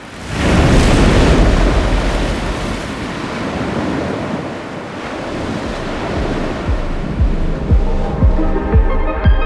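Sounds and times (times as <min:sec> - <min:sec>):
heavy waves crashing on a rough stormy sea: 0:00.0 - 0:08.8
wind buffeting the microphone: 0:00.1 - 0:08.7.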